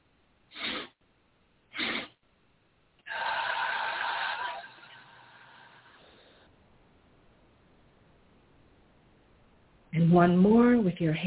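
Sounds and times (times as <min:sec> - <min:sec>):
quick sniffs through the nose in a breathing exercise: 0:00.5 - 0:01.0, 0:01.7 - 0:02.2
long steady exhale out through the mouth in a breathing exercise: 0:03.0 - 0:06.5
speech: 0:10.0 - 0:11.2.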